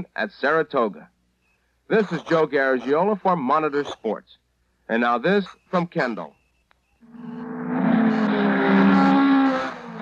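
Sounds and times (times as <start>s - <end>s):
speech: 0.0s - 1.1s, 1.9s - 6.4s
powerful high-performance racing engine revving: 7.1s - 10.0s.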